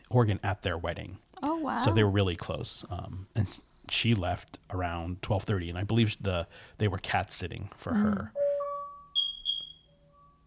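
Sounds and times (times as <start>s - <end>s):
speech: 0.1s - 8.4s
fire alarm low steady tone during a test: 8.3s - 10.4s.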